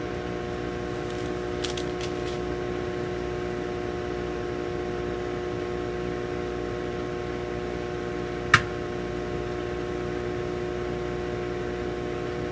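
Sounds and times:
microwave humming while cooking popcorn: 0.0 - 12.5
popcorn popping in a microwave: 0.8 - 2.8, 8.5 - 8.8.

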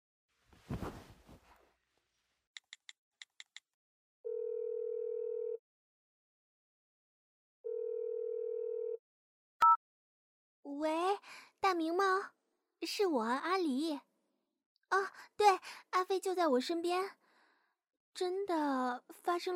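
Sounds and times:
telephone handset rustling: 0.6 - 1.6
long steady phone tones: 4.3 - 5.6, 7.7 - 9.0
speech: 10.7 - 14.1, 14.9 - 17.2, 18.2 - 19.5.

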